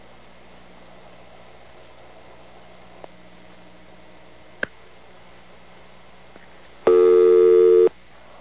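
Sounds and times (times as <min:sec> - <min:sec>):
phone system click as a caller connects: 0:06.9 - 0:07.9.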